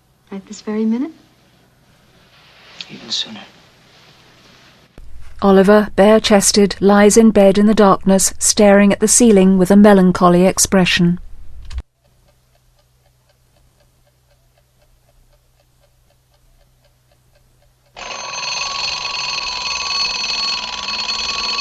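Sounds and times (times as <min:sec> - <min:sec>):
speech: 0:00.3 - 0:01.2, 0:02.9 - 0:03.6, 0:05.4 - 0:11.2
clock ticking: 0:12.0 - 0:21.5
alarm clock ringing: 0:18.0 - 0:21.5.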